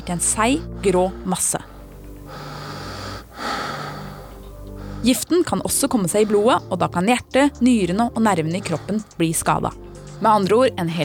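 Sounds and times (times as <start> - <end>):
speech: 0.0 - 1.7, 5.0 - 11.0
heavy labored rasping breathing: 0.5 - 6.9, 8.4 - 10.6.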